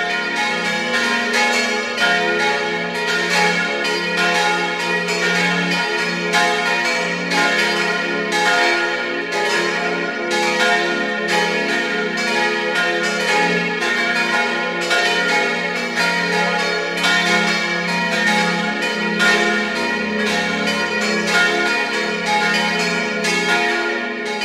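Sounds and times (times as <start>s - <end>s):
church bells ringing at noon: 0.0s - 24.4s.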